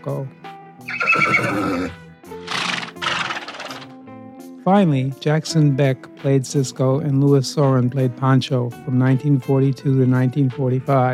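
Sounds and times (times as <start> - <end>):
speech: 0.0 - 2.0, 4.7 - 11.1
horse neighing with a long quavering whinny: 0.8 - 3.9.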